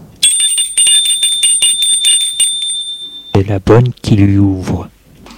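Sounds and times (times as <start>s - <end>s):
front doorbell of a house ringing loudly: 0.2s - 3.5s
speech: 3.4s - 4.9s.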